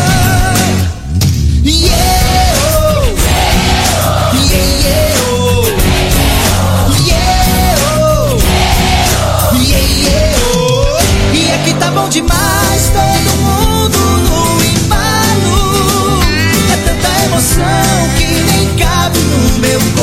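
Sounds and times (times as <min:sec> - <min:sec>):
driving live music at a concert: 0:00.0 - 0:20.0
concert crowd yelling and cheering: 0:01.8 - 0:13.3.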